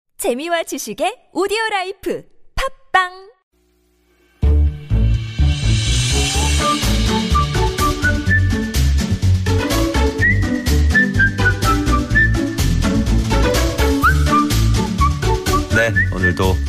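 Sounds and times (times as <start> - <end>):
speech: 0.2 - 3.3, 15.8 - 16.6
full steady backing music with a strong beat: 4.4 - 16.0
bright whistled melody with gliding sustained notes: 6.1 - 16.6.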